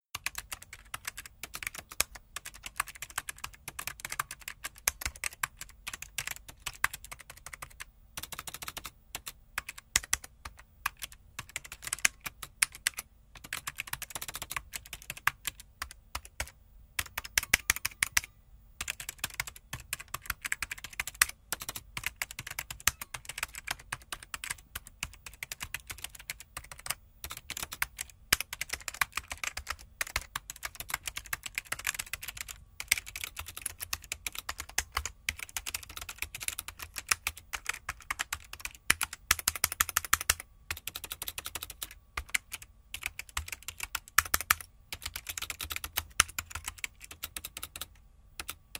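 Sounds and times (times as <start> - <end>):
typing sound effect: 0.1 - 48.7.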